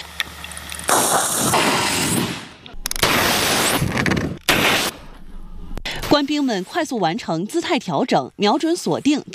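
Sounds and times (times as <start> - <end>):
flamethrower live-fire spraying during a military drill on mountainous terrain: 0.9 - 4.9
speech: 6.2 - 9.3.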